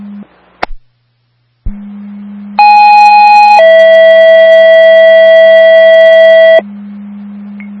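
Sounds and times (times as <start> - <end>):
two-tone emergency dispatch paging alert for an EMS call: 2.6 - 6.6.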